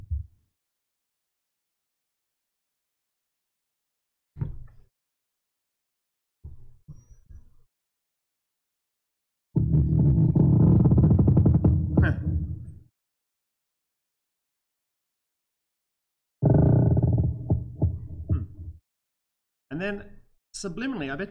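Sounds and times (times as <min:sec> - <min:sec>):
low groaning creaks of wood from swaying trees: 0:09.6 - 0:12.8, 0:16.4 - 0:18.8
speech: 0:19.8 - 0:21.2.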